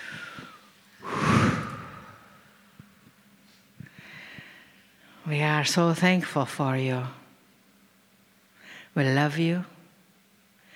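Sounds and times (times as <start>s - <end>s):
deep breath: 0.0s - 2.6s, 3.8s - 5.2s
speech: 5.3s - 7.2s, 9.0s - 9.7s.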